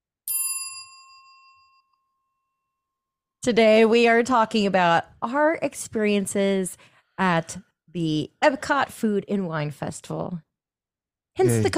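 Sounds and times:
notification bell ding: 0:00.3 - 0:02.3
speech: 0:03.4 - 0:10.5, 0:11.4 - 0:11.7.

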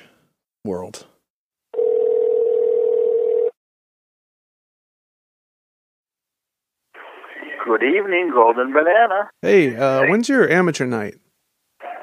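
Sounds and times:
speech: 0:00.6 - 0:01.1, 0:07.6 - 0:11.2
telephone dial tone: 0:01.8 - 0:03.6.

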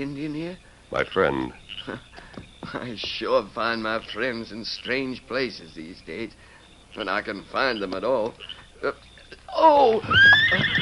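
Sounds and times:
speech: 0:00.0 - 0:10.8
horse whinnying: 0:09.5 - 0:10.8.

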